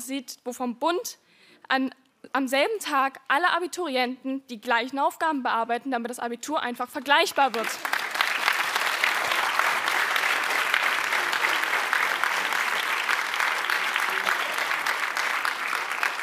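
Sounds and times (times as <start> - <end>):
speech: 0.1 - 8.0
audience applause: 7.5 - 16.2.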